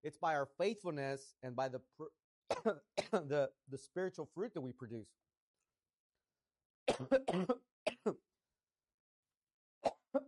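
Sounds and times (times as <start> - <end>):
speech: 0.0 - 5.2, 6.9 - 8.3
person coughing harshly: 2.5 - 3.3, 6.9 - 8.2.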